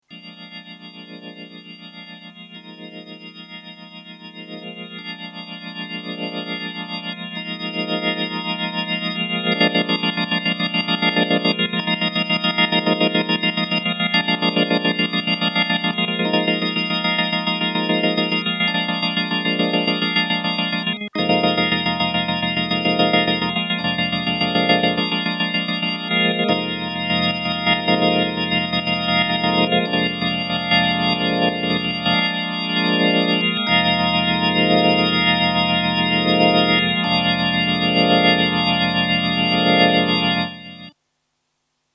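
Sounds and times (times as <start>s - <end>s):
Hammond XK 4 organ with tremolo: 0.1s - 40.9s.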